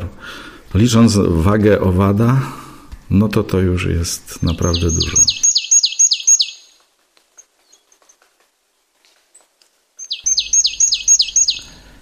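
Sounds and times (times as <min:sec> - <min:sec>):
speech: 0:00.7 - 0:05.4
tit calling: 0:04.4 - 0:06.8, 0:10.0 - 0:11.8.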